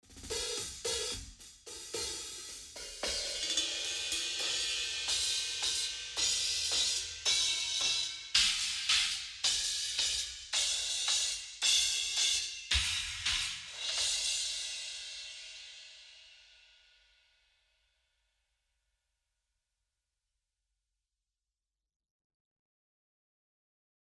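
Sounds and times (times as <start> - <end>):
cymbals: 0.1 - 16.8.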